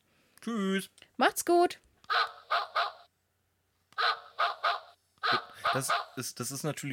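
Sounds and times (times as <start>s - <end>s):
speech: 0.4s - 2.3s, 5.7s - 6.9s
dog barking sharply: 2.1s - 3.1s, 4.0s - 6.2s.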